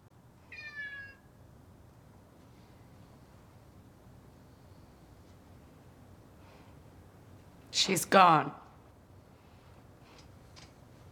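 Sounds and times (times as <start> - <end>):
cat meowing: 0.5 - 1.2
speech: 7.8 - 8.6.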